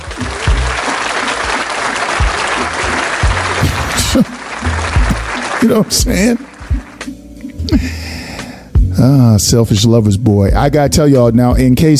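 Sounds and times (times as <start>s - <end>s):
crowd applause: 0.0s - 7.1s
speech: 4.2s - 4.4s, 5.6s - 6.5s, 7.7s - 8.0s, 9.0s - 11.9s.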